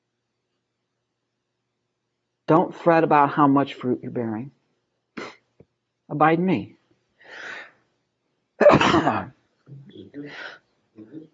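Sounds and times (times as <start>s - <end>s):
speech: 2.5s - 4.6s, 6.1s - 7.5s, 8.6s - 11.3s
sneeze: 8.6s - 10.0s
person murmuring: 9.2s - 11.3s.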